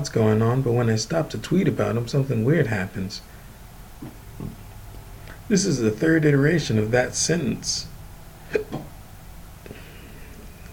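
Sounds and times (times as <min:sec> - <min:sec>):
speech: 0:00.0 - 0:03.3, 0:05.5 - 0:07.9
hiss: 0:00.0 - 0:10.7
person hiccuping while recording a spoken reading: 0:08.4 - 0:08.9.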